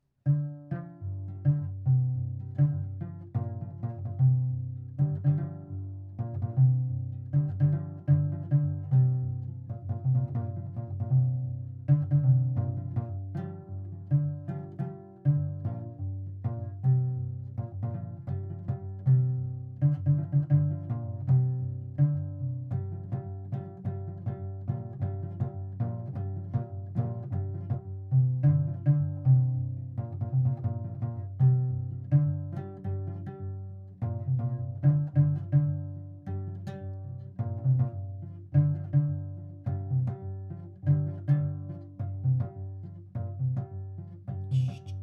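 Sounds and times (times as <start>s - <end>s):
six-string gros ngoni playing: 0.3s - 45.0s.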